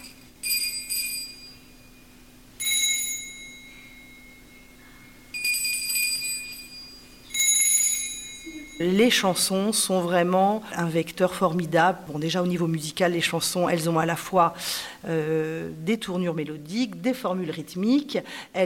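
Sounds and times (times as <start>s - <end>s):
small bells jingling: 0.0s - 10.4s
faint steady low hum: 0.0s - 18.6s
speech: 8.8s - 18.6s.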